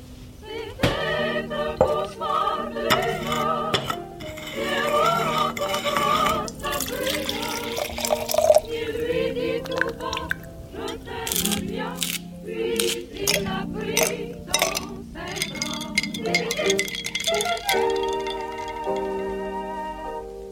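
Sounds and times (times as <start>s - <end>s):
continuous music: 0.0s - 20.5s
light kitchen clatter: 2.9s - 8.7s, 12.8s - 19.1s
liquid pouring into a glass for a Caesar cocktail: 5.7s - 11.5s, 14.0s - 19.0s.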